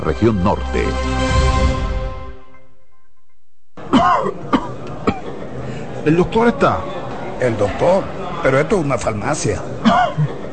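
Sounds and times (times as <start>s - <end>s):
speech: 0.0s - 1.8s, 6.0s - 10.4s
sustained tone: 0.0s - 3.8s
person coughing harsh rasping and sharp coughs: 3.9s - 5.4s, 9.8s - 10.5s.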